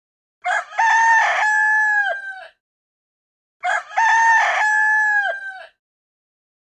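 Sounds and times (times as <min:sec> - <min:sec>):
rooster crowing: 0:00.4 - 0:02.6, 0:03.6 - 0:05.8.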